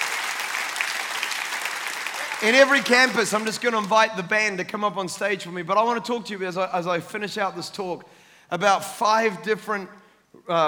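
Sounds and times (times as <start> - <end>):
crowd applauding: 0.0 - 4.1
speech: 2.4 - 10.6.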